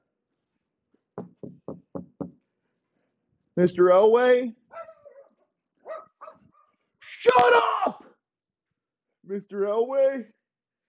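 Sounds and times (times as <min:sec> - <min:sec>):
speech: 0:03.6 - 0:04.6, 0:09.4 - 0:10.4
two small dachshunds barking in high yaps: 0:04.7 - 0:06.8.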